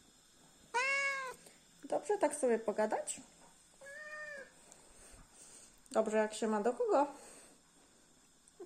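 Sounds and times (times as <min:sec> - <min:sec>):
sphynx cat meowing: 0:00.8 - 0:01.4, 0:03.8 - 0:04.6
speech: 0:01.9 - 0:03.4, 0:06.0 - 0:07.3.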